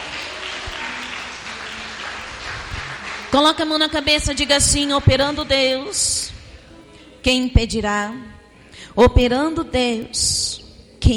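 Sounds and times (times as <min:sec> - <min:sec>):
congregation clapping hands during a lively church worship service: 0:00.0 - 0:06.4
speech: 0:03.3 - 0:06.3, 0:07.2 - 0:08.4, 0:09.0 - 0:10.4.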